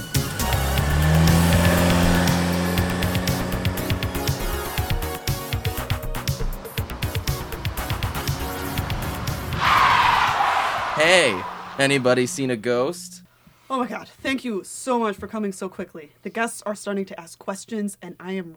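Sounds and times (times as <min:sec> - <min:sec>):
car tires squealing: 0:00.0 - 0:05.0, 0:07.1 - 0:12.6
car engine revving hard with stuttering note: 0:00.0 - 0:12.4
speech: 0:11.0 - 0:18.5.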